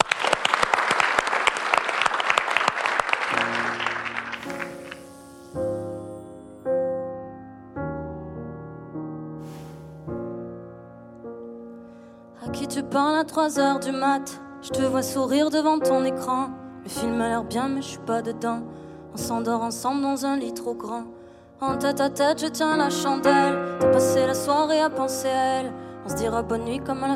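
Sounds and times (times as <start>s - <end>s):
crowd applauding a live music act: 0.0s - 5.1s
soft keyboard music with sustained chords: 3.4s - 27.1s
speech: 13.3s - 27.1s.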